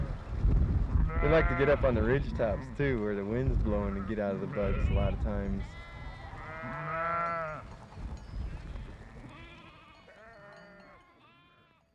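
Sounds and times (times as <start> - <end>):
herd of sheep bleating: 1.0 - 3.0, 3.7 - 7.7, 8.8 - 11.9
speech: 1.2 - 5.9.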